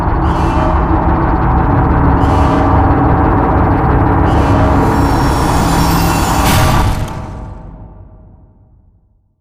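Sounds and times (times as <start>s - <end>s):
warehouse cargo elevator moving up: 0.2s - 7.6s.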